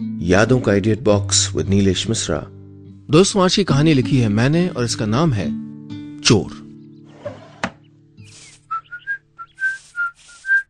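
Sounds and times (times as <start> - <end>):
speech: 0.0 - 5.6, 6.2 - 6.6
man whistling a film tune partly off-key while getting ready: 8.7 - 10.6.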